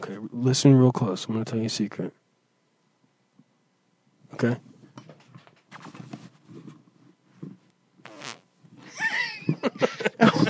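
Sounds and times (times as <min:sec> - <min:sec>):
speech: 0:00.1 - 0:02.2, 0:04.4 - 0:04.7
fart: 0:08.0 - 0:08.9
laughter: 0:08.9 - 0:10.4.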